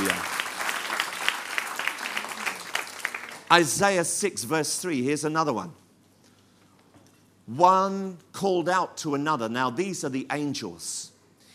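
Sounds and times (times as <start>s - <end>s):
audience applause at a church service: 0.0s - 3.7s
speech: 3.5s - 5.8s, 7.5s - 11.1s.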